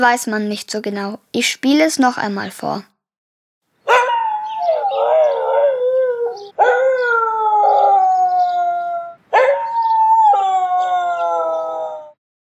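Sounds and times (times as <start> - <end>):
speech: 0.0 - 2.9
dog howling: 3.9 - 12.2.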